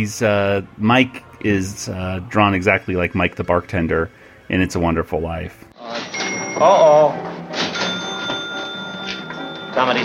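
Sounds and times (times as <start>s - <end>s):
speech: 0.0s - 7.3s, 9.8s - 10.0s
cash register bell ringing: 5.8s - 10.0s.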